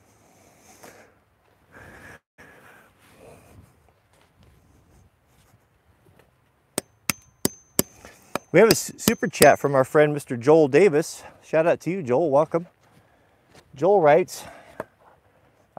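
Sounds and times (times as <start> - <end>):
hammer striking wood: 6.8 - 9.6
speech: 8.5 - 12.8, 13.8 - 14.6.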